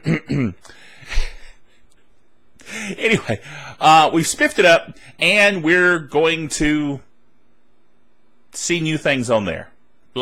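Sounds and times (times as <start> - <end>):
throat being cleared deliberately: 0.0 - 1.6
speech: 0.3 - 0.8, 3.0 - 7.1, 8.6 - 10.2.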